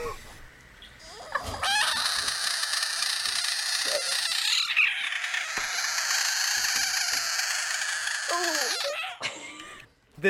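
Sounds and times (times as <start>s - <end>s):
frog call: 1.1s - 9.2s.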